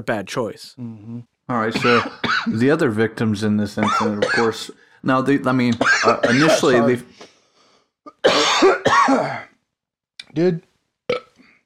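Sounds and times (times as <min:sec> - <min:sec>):
speech: 0:00.0 - 0:07.3, 0:08.2 - 0:09.5, 0:10.3 - 0:10.7
person clearing throat after inhaling fluid: 0:01.7 - 0:02.6, 0:03.8 - 0:04.6, 0:05.8 - 0:06.9, 0:08.1 - 0:09.5
person coughing after inhaling fluid: 0:01.7 - 0:02.6, 0:03.8 - 0:04.6, 0:05.8 - 0:07.0, 0:08.1 - 0:09.5.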